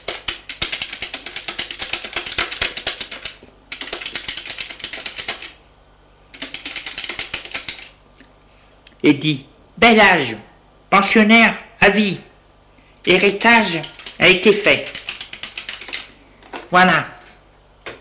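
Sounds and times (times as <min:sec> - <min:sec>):
typing on a computer keyboard: 0:00.0 - 0:05.6, 0:06.3 - 0:07.9, 0:13.7 - 0:14.2, 0:14.8 - 0:16.1
speech: 0:09.0 - 0:12.3, 0:13.0 - 0:15.0, 0:16.7 - 0:17.1.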